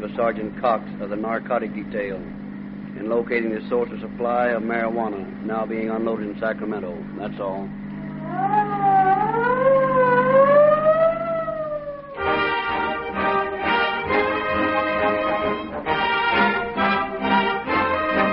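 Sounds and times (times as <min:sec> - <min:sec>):
speech: 0:00.0 - 0:02.4, 0:03.0 - 0:08.9
emergency vehicle siren wailing: 0:08.0 - 0:18.3.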